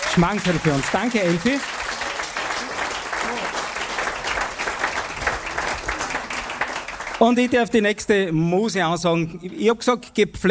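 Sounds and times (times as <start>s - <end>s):
audience applause: 0.0s - 7.7s
speech: 0.2s - 1.9s, 7.2s - 10.4s.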